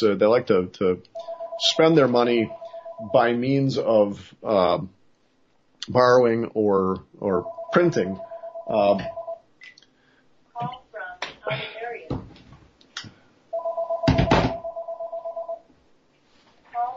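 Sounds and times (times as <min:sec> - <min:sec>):
speech: 0:00.0 - 0:05.0, 0:05.8 - 0:09.2, 0:10.6 - 0:10.8, 0:11.5 - 0:11.7
telephone ringing with warbling electronic trills: 0:01.2 - 0:03.4, 0:07.4 - 0:09.4, 0:13.5 - 0:15.6.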